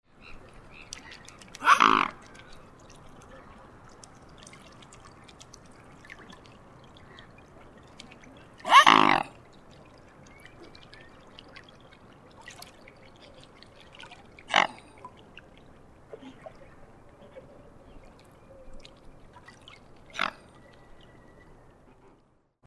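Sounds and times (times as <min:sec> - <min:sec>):
mute swan: 0:00.1 - 0:22.3.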